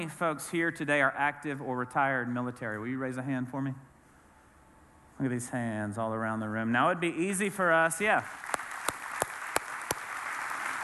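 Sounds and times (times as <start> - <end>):
speech: 0.0 - 3.9, 5.2 - 8.6
audience applauding in a large room: 8.3 - 10.8
sharp claps: 8.4 - 10.8.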